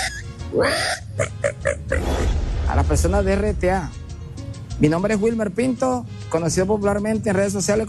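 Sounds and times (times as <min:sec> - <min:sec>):
voice imitating a pig squealing when grabbed by the ear: 0:00.0 - 0:02.1
speech: 0:00.5 - 0:04.0, 0:04.8 - 0:07.8.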